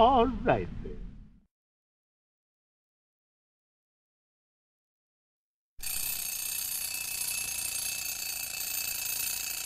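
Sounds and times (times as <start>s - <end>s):
speech: 0.0s - 1.0s
alarm clock ringing with a harsh metallic jangle: 5.8s - 9.6s.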